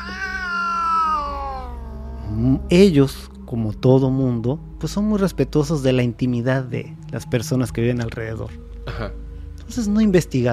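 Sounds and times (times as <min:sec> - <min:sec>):
cat meowing with a wailing tone in an apartment: 0:00.0 - 0:02.7
speech: 0:02.4 - 0:10.5.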